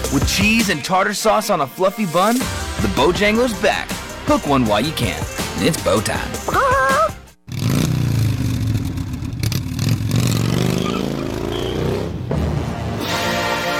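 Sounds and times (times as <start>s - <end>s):
speech: 0.1s - 6.9s
loud motorcycle engine revving: 7.4s - 13.1s.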